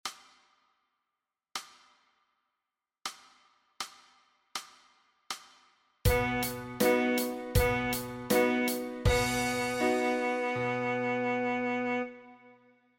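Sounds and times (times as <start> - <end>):
saxophone playing G sharp: 6.1 - 12.6.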